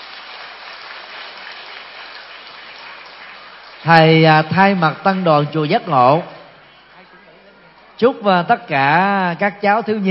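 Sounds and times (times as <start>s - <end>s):
large audience applauding at a Children's Day event at a pagoda: 0.0s - 7.0s
speech: 3.8s - 6.3s, 8.0s - 10.1s.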